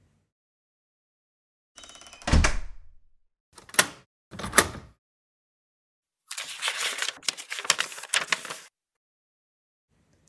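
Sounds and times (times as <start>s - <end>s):
door thudding shut: 2.3s - 2.9s
paper envelope torn open with crisp rustling and ripping: 6.3s - 8.7s.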